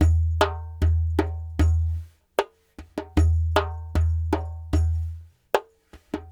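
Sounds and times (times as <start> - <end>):
large dumbek drum: 0.0 - 2.1, 2.8 - 5.3, 6.0 - 6.3.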